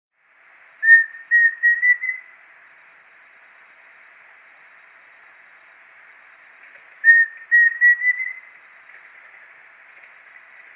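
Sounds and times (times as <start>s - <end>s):
pheasant cuckoo Dromococcyx phasianellus whistling: 0.8s - 2.3s, 7.0s - 8.5s.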